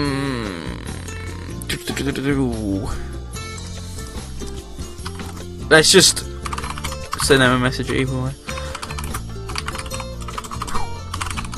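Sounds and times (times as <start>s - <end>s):
speech: 1.7s - 3.1s, 5.7s - 6.3s, 7.2s - 8.4s
typing on a computer keyboard: 6.4s - 7.2s, 8.6s - 11.5s.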